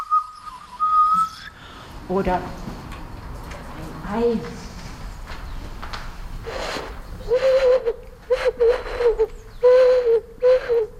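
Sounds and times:
owl-like hooting tones blown across a snail shell: 0:00.0 - 0:01.6, 0:06.5 - 0:10.9
speech: 0:02.1 - 0:02.7, 0:04.1 - 0:04.7, 0:07.3 - 0:10.9.

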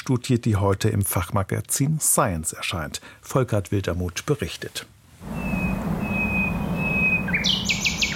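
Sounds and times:
speech: 0:00.0 - 0:05.4
low steady rumble: 0:05.2 - 0:08.1
nightingale singing: 0:05.3 - 0:08.1.

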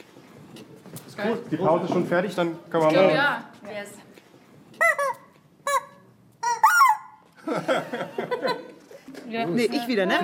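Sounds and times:
speech: 0:01.2 - 0:04.0, 0:09.3 - 0:10.2
chickens squawking and clucking: 0:04.8 - 0:07.2
laughter: 0:07.4 - 0:09.2.

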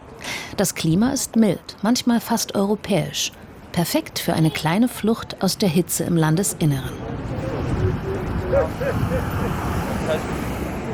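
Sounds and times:
rush-hour street traffic of cars and minibuses rumbling: 0:00.0 - 0:10.9
speech: 0:00.6 - 0:07.3, 0:08.5 - 0:10.4
indistinct voices murmuring: 0:06.9 - 0:10.9.

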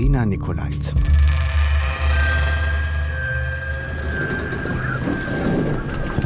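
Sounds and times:
speech: 0:00.0 - 0:01.5
deep low rumbling: 0:00.0 - 0:06.2
faint whining tone: 0:01.1 - 0:06.2
strong wind roaring at a wooden jetty on Helgoland, North Sea: 0:02.6 - 0:06.2
waves churning at a swaying wooden jetty on Helgoland, North Sea: 0:03.9 - 0:06.2.

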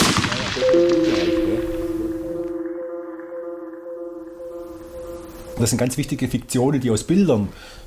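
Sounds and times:
rifle gunshot fired to test ammunition: 0:00.0 - 0:00.7
steady ringing whine: 0:00.5 - 0:07.2
speech: 0:05.6 - 0:07.8.

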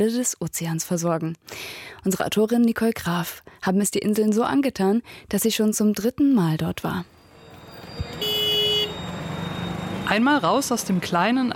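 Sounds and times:
speech: 0:00.0 - 0:07.2, 0:10.1 - 0:11.5
low traffic rumble of slow street traffic on hilly roads: 0:06.8 - 0:11.5
car horn toot in slow street traffic on hilly roads: 0:07.6 - 0:10.2.

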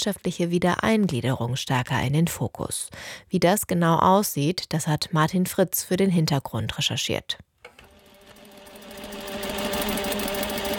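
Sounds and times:
speech: 0:00.0 - 0:07.5
several industrial sewing machines rattling: 0:07.8 - 0:10.7.

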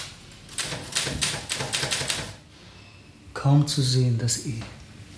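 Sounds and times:
typewriter keystrokes clacking: 0:00.5 - 0:02.3
speech: 0:03.4 - 0:04.8.

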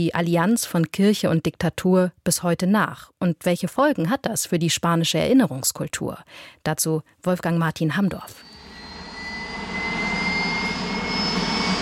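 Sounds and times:
speech: 0:00.0 - 0:08.5
military helicopter engine with high turbine whine taking off: 0:08.4 - 0:11.8.

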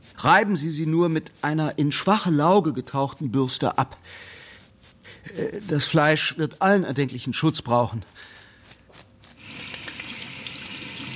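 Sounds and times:
speech: 0:00.2 - 0:04.3, 0:05.2 - 0:08.4
tap water running as lamb meat is rinsed in a kitchen: 0:09.4 - 0:11.1.

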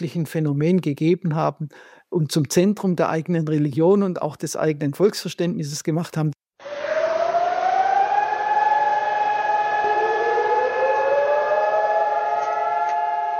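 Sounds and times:
speech: 0:00.0 - 0:06.4
nationwide memorial sirens wailing across Israel: 0:06.6 - 0:13.3.

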